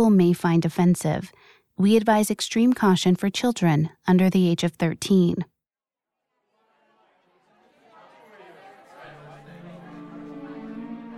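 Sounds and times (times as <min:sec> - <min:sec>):
speech: 0:00.0 - 0:05.5
party guests chattering and laughing in a living room: 0:06.4 - 0:11.1
faint musical tone: 0:09.0 - 0:11.1.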